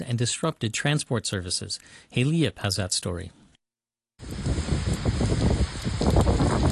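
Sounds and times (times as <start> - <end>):
speech: 0.1 - 3.4
heavy torrential rain over cities east of Tokyo in Chiba: 4.2 - 6.6.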